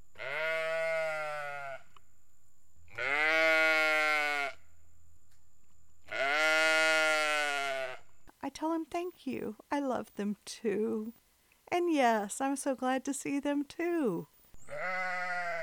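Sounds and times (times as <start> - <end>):
sheep bleating: 0.2 - 2.0, 2.9 - 4.6, 6.1 - 8.1, 14.6 - 15.6
speech: 9.2 - 14.3.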